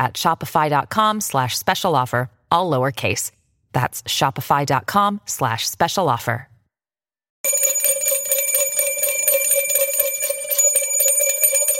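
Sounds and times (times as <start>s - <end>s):
speech: 0.0s - 6.5s
bell ringing in a rapid metallic trill: 7.4s - 11.7s.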